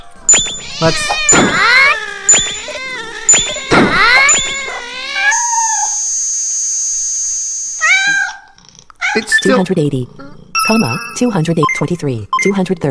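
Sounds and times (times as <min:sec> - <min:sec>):
cat meows played back through a device: 0:00.4 - 0:06.2, 0:07.8 - 0:08.4
speech: 0:00.8 - 0:01.8, 0:09.2 - 0:12.9.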